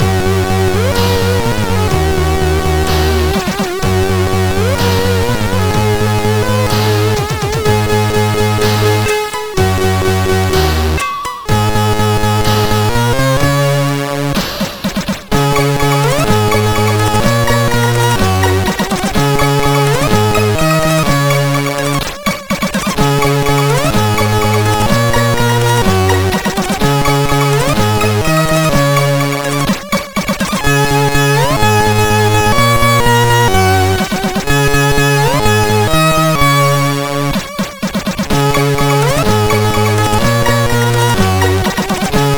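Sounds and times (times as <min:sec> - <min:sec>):
funny chiptune music on a sound chip: 0:00.0 - 0:42.3.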